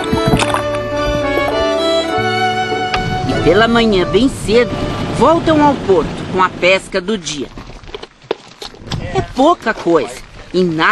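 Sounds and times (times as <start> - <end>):
water splashing and gurgling: 0.0 - 2.0, 2.9 - 10.8
small fishing boat droning hum on water: 0.0 - 8.3
speech: 3.5 - 7.6, 9.4 - 10.8.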